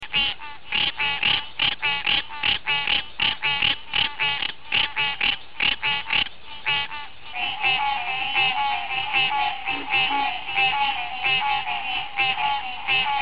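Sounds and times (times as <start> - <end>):
green treefrog Hyla cinerea calling in nasal honking notes: 0.0 - 13.1.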